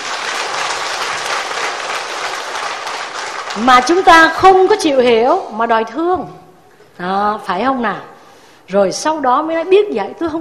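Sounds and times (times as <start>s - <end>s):
audience applause at a Buddhist talk: 0.0s - 4.0s
speech: 3.6s - 6.4s, 7.0s - 8.1s, 8.7s - 10.4s.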